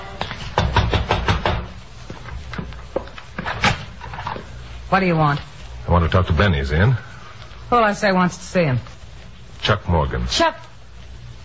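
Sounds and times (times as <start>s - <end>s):
knocking on the wooden back door of a single-family frame house: 0.6s - 1.7s
speech: 4.9s - 7.1s, 7.7s - 8.9s, 9.6s - 10.7s.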